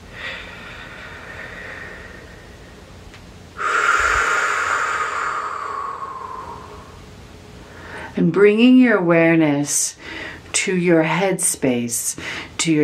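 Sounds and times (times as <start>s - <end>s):
deep breath taken during a guided healing meditation: 0.0s - 2.9s, 3.6s - 7.0s, 7.6s - 8.2s
soft hiss: 0.0s - 12.8s
speech: 8.2s - 12.8s.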